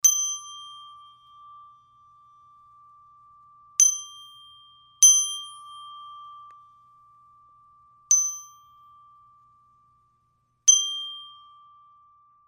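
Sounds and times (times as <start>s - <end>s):
solo chime: 0.0s - 12.4s.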